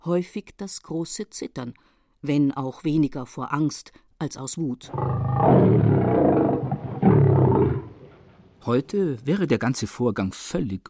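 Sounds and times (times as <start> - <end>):
speech: 0.0 - 6.0, 8.6 - 10.8
lion roaring: 4.9 - 8.4.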